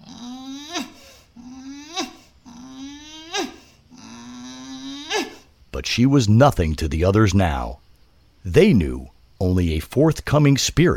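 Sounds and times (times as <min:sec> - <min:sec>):
dog growling breathlessly with strained growl-whines: 0:00.0 - 0:05.4
speech: 0:05.8 - 0:07.8, 0:08.4 - 0:10.9.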